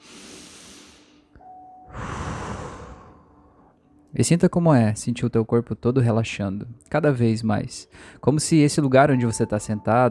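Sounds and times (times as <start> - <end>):
fuller louder exhale rushing out: 0.0 - 1.3, 1.9 - 3.7
slow deep breath drawn in: 0.0 - 1.3, 1.9 - 3.8
speech: 4.1 - 10.0.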